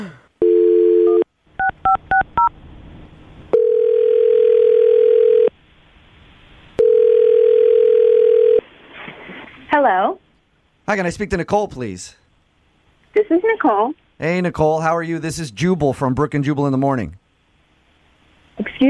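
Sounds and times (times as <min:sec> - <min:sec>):
telephone dial tone: 0:00.4 - 0:02.2, 0:03.5 - 0:05.5, 0:06.8 - 0:08.6
speech: 0:10.9 - 0:12.2, 0:13.2 - 0:17.2.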